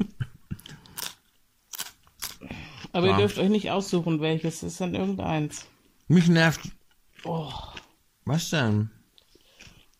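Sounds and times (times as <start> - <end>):
crisp crunching of raw white cabbage being chewed: 0.6 - 3.0, 6.4 - 8.0, 9.1 - 9.9
speech: 2.9 - 9.0.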